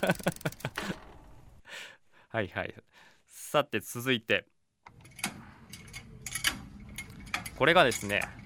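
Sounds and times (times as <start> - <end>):
speech: 0.0 - 0.7, 2.3 - 4.6, 7.6 - 8.4
mobile shelving unit handle cranking and ratcheting: 0.0 - 0.9, 4.9 - 8.4
laughter: 0.0 - 1.0.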